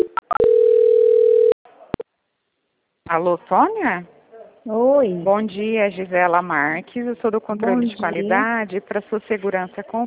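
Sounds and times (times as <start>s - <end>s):
telephone tone while a call is being transferred: 0.0s - 1.6s
speech: 3.1s - 10.0s.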